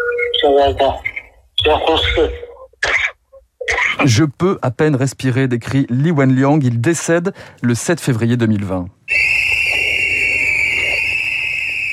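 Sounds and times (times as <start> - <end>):
speech: 0.4 - 2.5, 3.7 - 9.3
many whistles blown by a crowd outside a hospital: 9.1 - 11.9.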